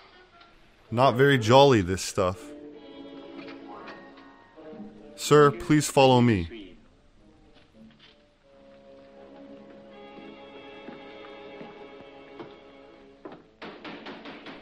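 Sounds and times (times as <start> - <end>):
speech: 0.9 - 2.5, 5.3 - 6.6
sharp knocks on a door: 13.3 - 14.6.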